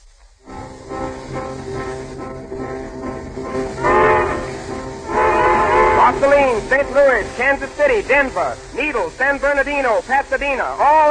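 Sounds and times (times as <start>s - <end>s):
fast passenger train rumbling along the tracks: 0.4s - 11.0s
whistle-like tone of passenger train: 2.6s - 8.6s
speech: 6.2s - 11.0s.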